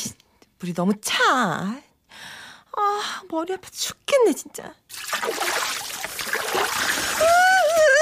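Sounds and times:
speech: 0:00.6 - 0:01.9, 0:03.0 - 0:05.6
very cold water splashing and pouring while washing hair: 0:04.9 - 0:07.9.

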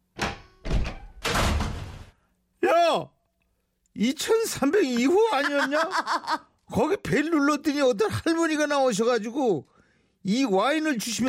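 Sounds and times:
door rattling as it swings and bangs shut: 0:00.1 - 0:02.2
speech: 0:02.9 - 0:03.1, 0:04.0 - 0:11.2
laughter: 0:04.9 - 0:06.5.

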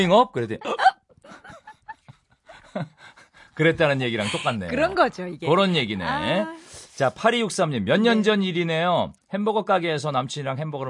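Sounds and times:
speech: 0:00.0 - 0:00.9, 0:02.8 - 0:03.0, 0:03.6 - 0:10.8
person imitating hiccups: 0:00.6 - 0:01.1
laughter: 0:00.6 - 0:05.0.

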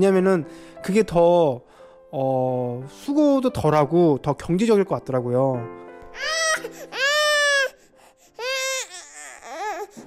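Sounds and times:
speech: 0:00.0 - 0:06.8
infant crying in loud wailing bursts: 0:06.2 - 0:10.0.

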